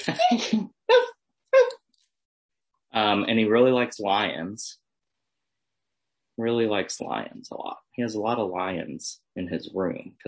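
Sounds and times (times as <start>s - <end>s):
laughter: 0.0s - 1.1s
young boy imitating a dog barking: 0.9s - 1.7s
speech: 3.2s - 4.8s, 6.4s - 10.2s.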